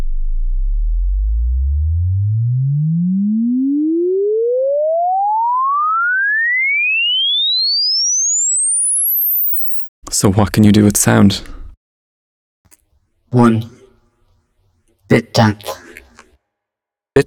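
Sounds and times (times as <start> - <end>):
pure sine tone sweeping from 20 to 20,000 hertz: 0.0 - 9.9
speech: 10.2 - 11.6, 13.3 - 13.8, 15.1 - 15.8.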